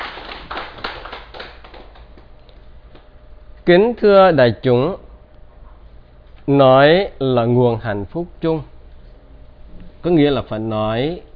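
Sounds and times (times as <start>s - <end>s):
audience applause of many hands clapping: 0.0s - 2.3s
speech: 3.7s - 5.0s, 6.4s - 8.7s, 10.0s - 11.3s.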